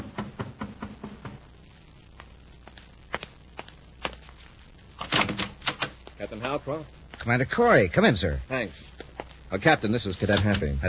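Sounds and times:
sharp raps on a door: 0.0s - 1.4s
speech: 6.3s - 8.9s, 9.5s - 10.8s.

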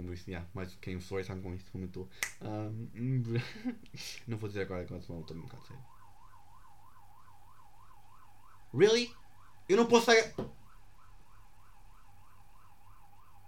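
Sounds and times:
speech: 0.1s - 6.0s, 8.7s - 10.6s
ambulance siren: 4.4s - 13.4s.

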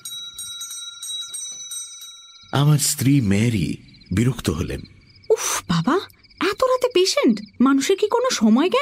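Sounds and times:
house doorbell ringing: 0.0s - 2.7s
speech: 2.5s - 6.0s, 7.0s - 8.7s.

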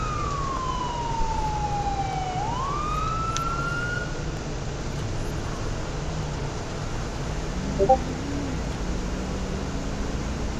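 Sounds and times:
police car siren wailing in a police video game: 0.0s - 4.0s
engine and road noise: 0.0s - 10.5s
fainter rising tone: 7.8s - 8.0s.

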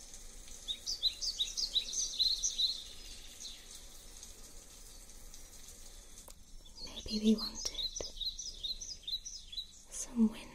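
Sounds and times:
soft steady rain: 0.0s - 10.5s
bird chirping and trilling: 0.6s - 3.8s, 6.5s - 10.2s
speech: 7.1s - 7.6s.

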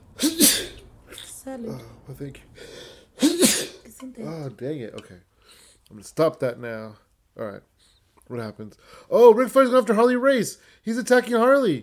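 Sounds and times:
sneeze: 0.2s - 1.3s, 3.2s - 3.8s
speech: 1.5s - 2.6s, 4.0s - 5.3s, 5.9s - 7.7s, 8.3s - 11.8s.

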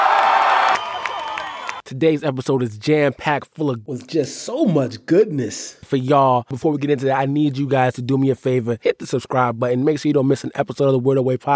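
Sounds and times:
crowd cheering with whoops: 0.0s - 1.8s
speech: 1.9s - 11.5s.

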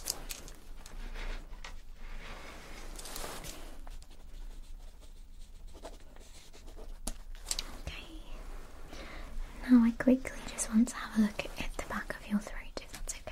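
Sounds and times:
pen scratching as notes are written by hand during a mock medical check-up: 4.0s - 7.0s
speech: 9.7s - 11.7s.

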